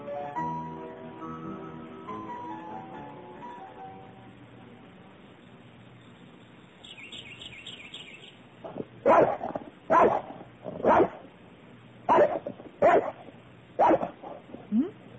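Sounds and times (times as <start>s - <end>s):
dog barking at a sparrow: 8.6s - 11.3s, 12.1s - 14.5s.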